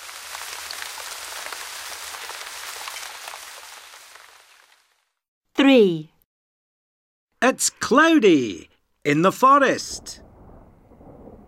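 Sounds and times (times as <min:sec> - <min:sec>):
steady rain pattering on a surface at the beach: 0:00.0 - 0:05.2, 0:09.8 - 0:11.4
speech: 0:05.6 - 0:06.1, 0:07.5 - 0:10.2.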